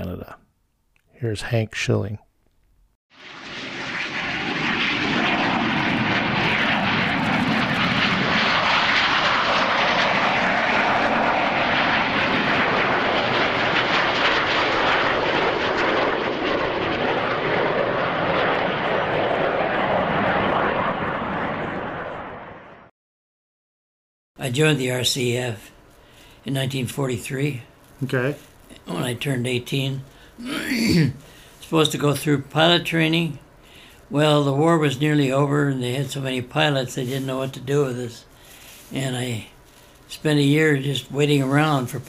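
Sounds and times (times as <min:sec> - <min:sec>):
speech: 0:01.2 - 0:02.2, 0:24.5 - 0:25.7, 0:26.4 - 0:33.4, 0:34.1 - 0:38.3, 0:38.9 - 0:39.5, 0:40.1 - 0:42.0
airplane engines roaring overhead: 0:03.3 - 0:22.8.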